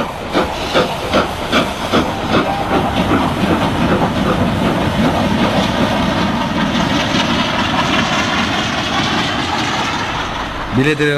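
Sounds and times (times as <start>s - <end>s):
train running on tracks: 0.0s - 11.1s
speech: 10.8s - 11.1s.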